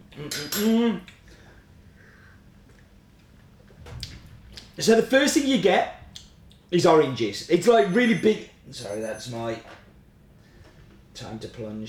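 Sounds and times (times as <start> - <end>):
speech: 0.2 - 1.2, 4.8 - 6.0, 6.7 - 9.8, 11.2 - 11.8
faint cutlery clink: 0.3 - 0.8.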